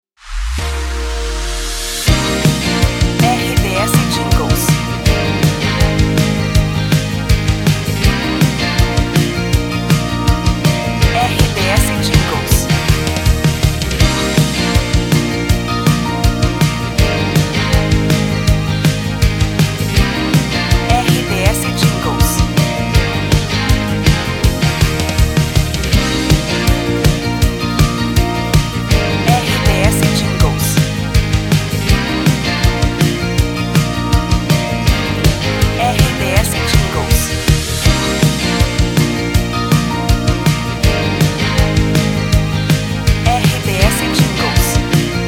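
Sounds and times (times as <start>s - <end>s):
background music for voice-over: 0.5s - 45.2s.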